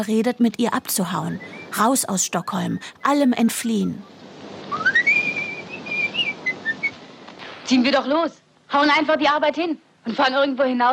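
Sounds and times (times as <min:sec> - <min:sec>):
speech: 0:00.0 - 0:04.2, 0:07.7 - 0:10.9
person whistling a bright cheerful tune: 0:04.7 - 0:07.0.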